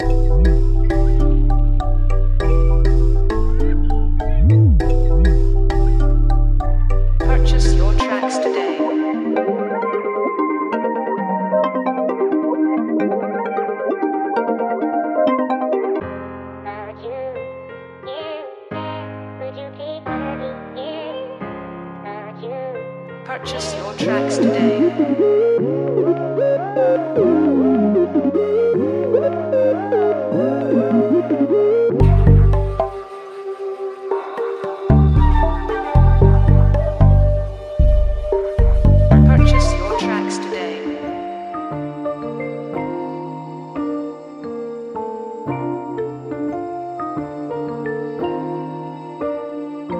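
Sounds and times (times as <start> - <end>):
music loop: 0.0 - 16.0, 23.5 - 44.2.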